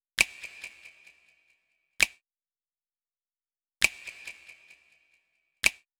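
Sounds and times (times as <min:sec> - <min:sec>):
drum loop at 132 BPM with snaps: 0:00.2 - 0:01.2, 0:02.0 - 0:02.2, 0:03.8 - 0:04.8, 0:05.6 - 0:05.9.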